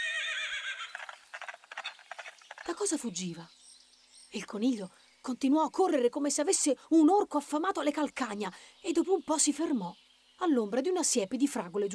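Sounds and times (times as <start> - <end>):
unicorn whinnying: 0.0 - 1.1
unicorn galloping away: 0.0 - 2.7
speech: 2.6 - 3.6, 4.3 - 11.9.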